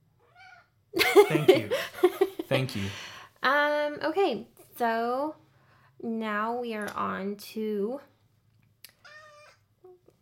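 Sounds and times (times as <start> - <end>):
speech: 1.0 - 1.9, 2.6 - 5.4, 6.0 - 8.1
laughter: 1.0 - 3.0
cat meowing: 9.0 - 9.6.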